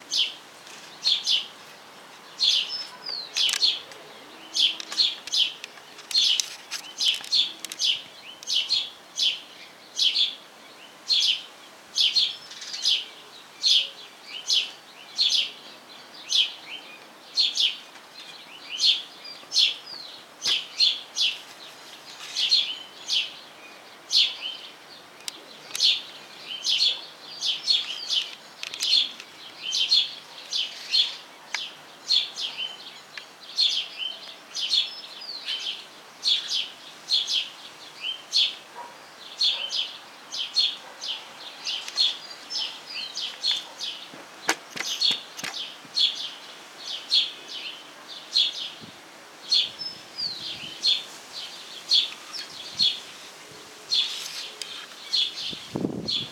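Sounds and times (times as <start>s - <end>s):
sparrow calling: 2.2s - 56.3s.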